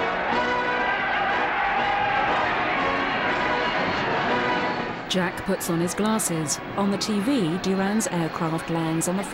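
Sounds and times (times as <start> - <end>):
large waving crowd cheering as an aircraft lands on a floodlit runway: 0.0 - 9.3
speech: 5.1 - 9.3.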